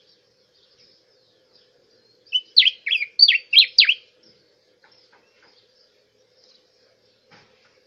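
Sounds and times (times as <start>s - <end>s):
Diuca finch song: 2.2s - 4.1s.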